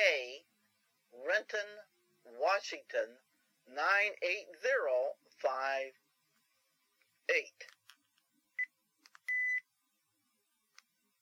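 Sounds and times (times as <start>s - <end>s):
speech: 1.4s - 6.0s, 7.3s - 7.8s
calculator divide button electronic beeps: 9.3s - 9.6s.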